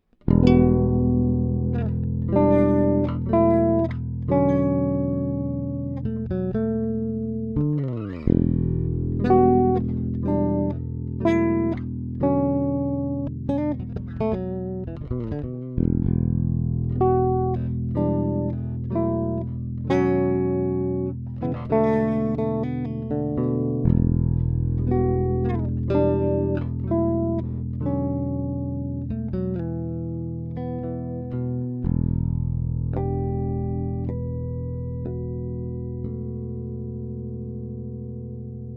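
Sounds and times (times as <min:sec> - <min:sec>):
guitar chords and harmonics: 0:00.0 - 0:38.7.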